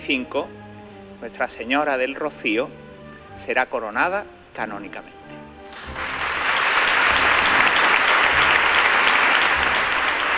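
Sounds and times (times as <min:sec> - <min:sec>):
speech: 0:00.0 - 0:00.6, 0:01.2 - 0:02.8, 0:03.4 - 0:06.2
large crowd of brotherhood members applauding an announcement: 0:05.7 - 0:10.3.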